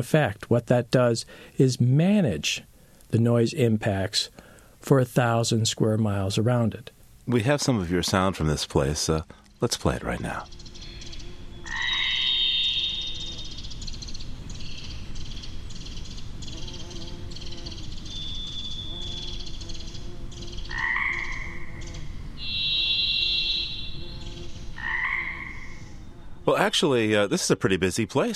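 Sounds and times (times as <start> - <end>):
speech: 0.0 - 10.6, 26.6 - 28.3
Pacific chorus frogs croaking in spring: 9.9 - 16.2, 20.3 - 26.1
varied thrush singing long buzzy whistled notes: 10.5 - 14.9, 22.4 - 24.4.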